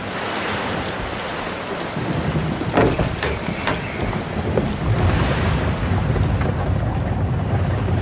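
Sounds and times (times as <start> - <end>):
heavy rain outside a carriage on the road: 0.0 - 8.0
low blustery wind: 0.0 - 8.0
knocking clatters: 2.1 - 7.6.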